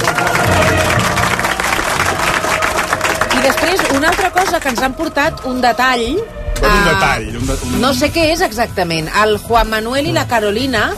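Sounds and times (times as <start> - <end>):
audience applause: 0.0 - 5.4
people cheering: 0.0 - 5.7
speech: 3.5 - 10.9.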